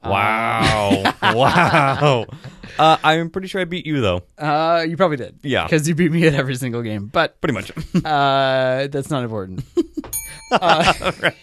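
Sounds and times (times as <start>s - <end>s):
speech: 0.0s - 9.8s, 10.4s - 11.4s
laughter: 0.5s - 3.1s, 10.5s - 11.4s
bright bell ding as a joke shame bell sound effect: 10.1s - 11.0s.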